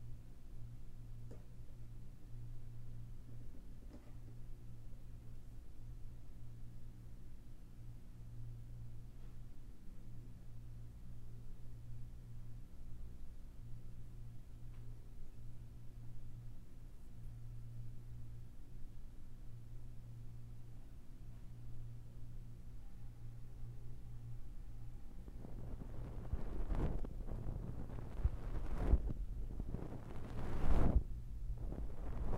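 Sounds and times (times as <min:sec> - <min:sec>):
steady low hum: 0:00.0 - 0:32.3
sharp crackling scrapes from ear cleaning: 0:25.2 - 0:32.3.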